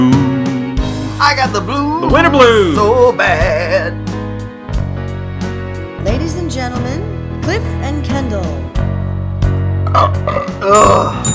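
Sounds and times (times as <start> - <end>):
person belching: 0.0 - 0.9, 9.8 - 11.3
speech: 1.3 - 4.0, 6.0 - 9.0, 9.9 - 11.3.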